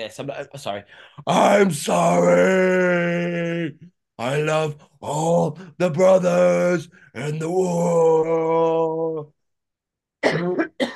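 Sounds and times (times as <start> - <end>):
speech: 0.0 - 9.4, 10.2 - 10.9
man coughing hard: 10.2 - 10.9.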